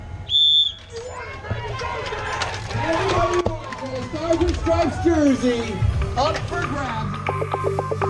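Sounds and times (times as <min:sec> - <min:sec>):
sharp piercing whistle blast signalling a cycling race start: 0:00.2 - 0:00.9
low murmur of crowd noise: 0:00.8 - 0:08.0
speech: 0:03.9 - 0:08.0.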